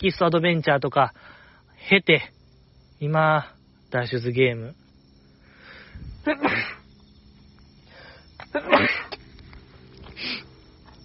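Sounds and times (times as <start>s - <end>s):
speech: 0.0s - 2.4s, 3.0s - 4.8s, 6.2s - 6.8s, 8.5s - 9.0s
person sneezing: 6.2s - 6.8s, 8.5s - 9.2s.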